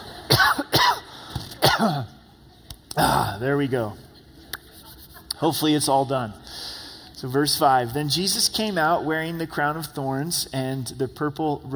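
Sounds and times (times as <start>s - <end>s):
person coughing: 0.3s - 2.2s, 2.9s - 3.4s
speech: 1.8s - 2.2s, 3.0s - 4.1s, 5.4s - 11.7s.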